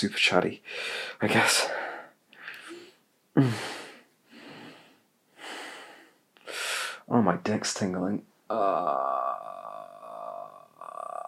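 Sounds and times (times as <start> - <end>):
speech: 0.0 - 1.8, 3.4 - 3.8, 7.1 - 9.6
heavy rhythmic breathing: 0.6 - 7.1.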